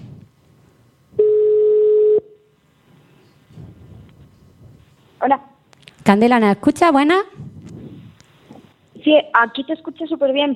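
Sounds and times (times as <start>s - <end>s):
telephone ringing tone on an outgoing call: 1.2s - 2.3s
speech: 5.2s - 5.5s, 6.1s - 7.4s, 9.0s - 10.5s.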